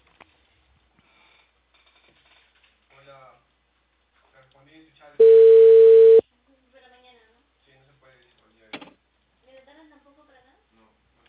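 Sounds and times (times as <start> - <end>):
speech: 4.5 - 5.4
telephone busy tone after a dropped call: 5.2 - 6.2.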